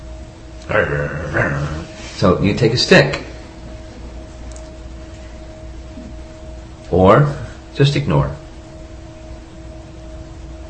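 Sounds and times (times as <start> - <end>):
person imitating a dog bark with a woof: 0.6 - 1.9
speech: 0.7 - 3.3, 7.0 - 8.4.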